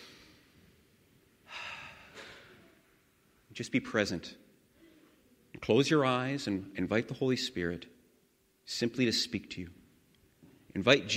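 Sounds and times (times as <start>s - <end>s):
people taking a deep breath in and out during a guided breathing exercise: 1.4s - 2.8s, 4.7s - 5.4s
speech: 3.6s - 4.4s, 5.6s - 8.0s, 8.7s - 9.8s, 10.8s - 11.1s.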